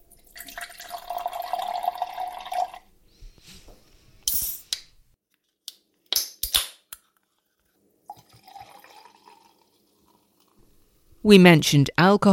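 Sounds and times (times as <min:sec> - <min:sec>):
non-alcoholic spirit with ginger ale pouring into a glass: 0:00.1 - 0:02.9, 0:08.0 - 0:10.6
speech: 0:11.3 - 0:12.3.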